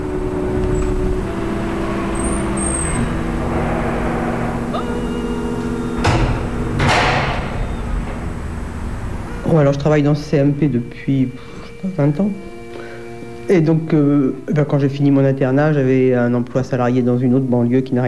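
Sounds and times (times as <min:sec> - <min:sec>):
steady low rumble: 0:00.0 - 0:16.2
door being pushed open with knocks or thuds: 0:00.5 - 0:10.8
speech: 0:09.6 - 0:12.5, 0:13.5 - 0:18.0.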